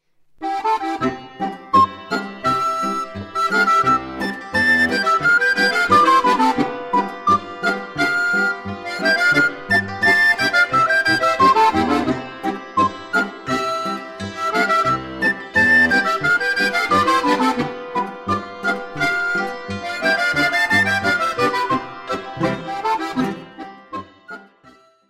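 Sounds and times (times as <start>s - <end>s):
Boarischer folk dance music: 0.4s - 24.8s.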